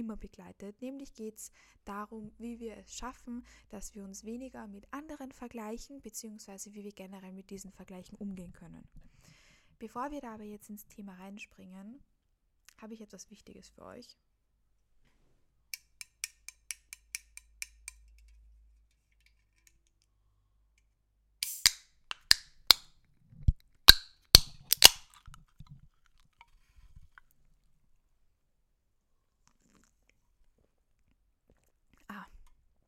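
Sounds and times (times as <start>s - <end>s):
speech: 0.0s - 9.1s, 9.8s - 12.1s, 12.8s - 14.2s
cold energy drink can being opened: 21.4s - 22.9s, 23.9s - 25.8s.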